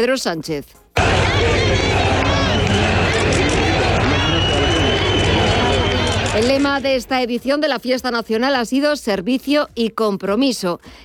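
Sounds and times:
speech: 0.0 - 2.1, 6.4 - 11.0
scattered shouting in a large outdoor crowd: 1.0 - 6.8
large outdoor crowd booing: 1.0 - 6.9.

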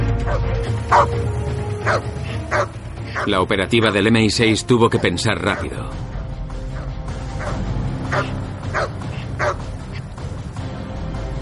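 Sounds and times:
dogs barking: 0.2 - 4.1, 5.4 - 5.8, 6.6 - 10.1
speech: 0.2 - 6.1.

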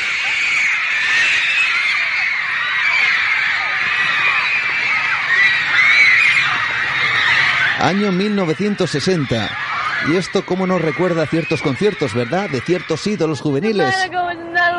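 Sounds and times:
huge crowd of fans screaming hysterically: 0.0 - 14.7
speech: 7.8 - 14.7
crowd of fans shouting a name: 10.0 - 14.7.

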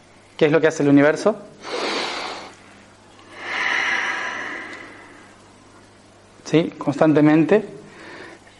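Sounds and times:
speech: 0.4 - 1.5, 6.5 - 7.8
deep breathing: 1.6 - 5.4, 7.8 - 8.5.

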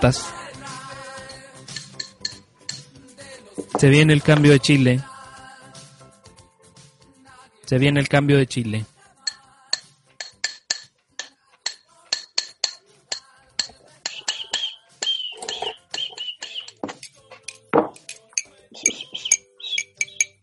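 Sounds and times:
speech: 0.0 - 0.4, 3.8 - 5.1, 7.7 - 8.9
metal pots and pans banged in protest: 1.7 - 2.9, 10.2 - 20.4.

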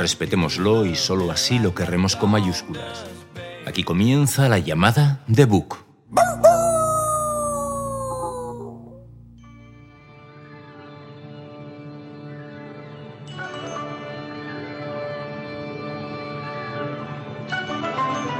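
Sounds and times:
speech: 0.0 - 6.4
loud wailing cry sliding downward in a TV nature documentary theme tune: 6.2 - 9.0.

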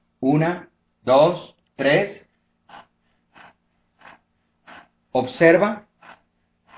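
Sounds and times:
speech: 0.2 - 2.8, 5.2 - 5.9
woman breathing rapidly into her chest during a breathing exercise: 2.2 - 6.7.

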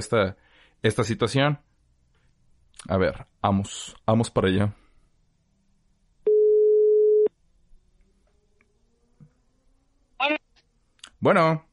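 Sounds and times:
speech: 0.0 - 1.7, 2.8 - 4.8, 10.2 - 10.4, 11.2 - 11.7
phone ringback tone while placing a call: 6.3 - 7.3.

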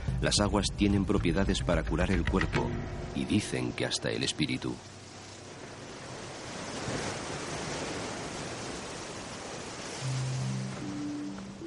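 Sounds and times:
speech: 0.2 - 5.0
low droning hum: 0.8 - 5.9
sea waves crashing against steep volcanic cliff coast: 3.2 - 11.6.

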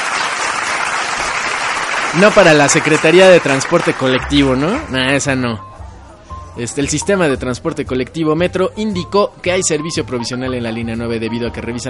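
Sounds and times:
crowd applauding: 0.0 - 5.0
speech: 2.1 - 5.7, 6.6 - 11.8.

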